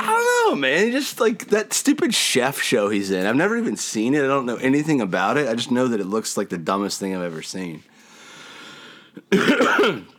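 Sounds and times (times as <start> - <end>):
speech: 0.6 - 7.9, 9.3 - 10.1
raspy cough: 9.3 - 10.1.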